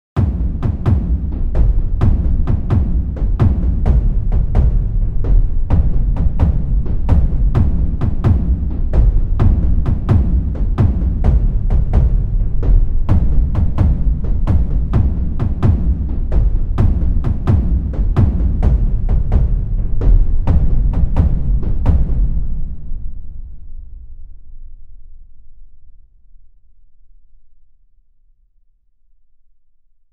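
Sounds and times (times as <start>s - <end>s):
Chinese-style battle assault drums: 0.2s - 23.0s.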